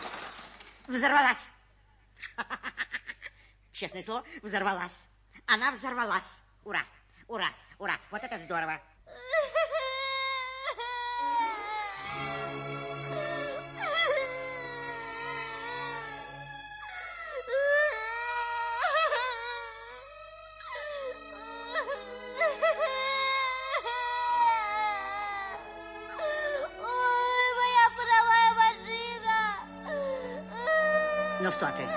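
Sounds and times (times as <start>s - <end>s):
speech: 1.0s - 1.6s, 3.8s - 8.9s
child crying with wailing and sobbing: 9.1s - 12.5s, 13.1s - 16.2s, 16.9s - 31.9s.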